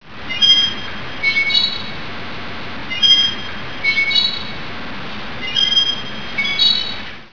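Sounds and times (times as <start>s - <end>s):
pillar squeaking: 0.3s - 2.0s, 2.9s - 4.6s, 5.4s - 7.1s.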